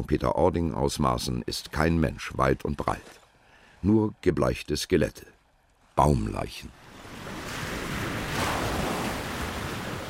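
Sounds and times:
speech: 0.0 - 3.2, 3.8 - 5.4, 6.0 - 6.8
sea surf roaring on a long white beach at St. Peter-Ording, Germany: 5.9 - 10.0
gusting wind on a long white beach at St. Peter-Ording, Germany: 6.7 - 10.0
louder breaking wave on a beach: 7.0 - 10.0.

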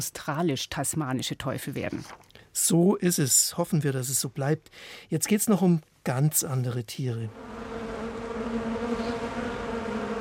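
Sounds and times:
speech: 0.0 - 7.7
bee swarm buzzing: 7.3 - 10.1.

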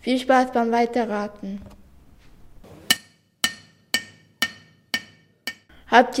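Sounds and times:
speech: 0.0 - 1.8, 5.9 - 6.1
hammer striking metal in the metal department of an orthotics workshop: 2.7 - 5.7.

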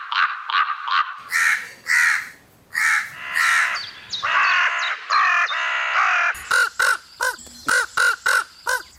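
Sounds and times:
common raven croaking calls: 0.0 - 8.9.

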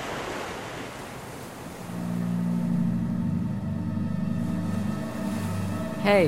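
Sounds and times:
ocean waves breaking: 0.0 - 6.2
low droning hum: 1.8 - 6.2
speech: 6.0 - 6.2.

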